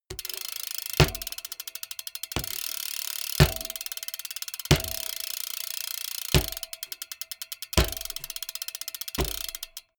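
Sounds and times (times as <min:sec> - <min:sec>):
BMX bike freewheel hit: 0:00.1 - 0:01.6, 0:02.3 - 0:04.1, 0:04.7 - 0:05.4, 0:06.3 - 0:06.9, 0:07.8 - 0:08.5, 0:09.2 - 0:09.8.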